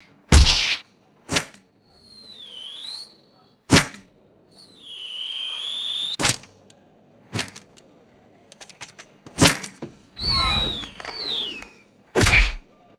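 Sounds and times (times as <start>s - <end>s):
arrows whistling by: 0.0s - 12.9s
arrows striking a surface: 0.3s - 1.6s, 8.6s - 12.6s.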